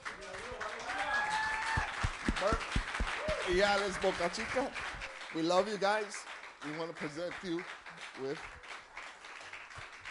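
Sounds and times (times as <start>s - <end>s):
congregation applauding: 0.0s - 10.0s
voices and cheers: 0.6s - 4.4s
speech: 3.5s - 8.6s.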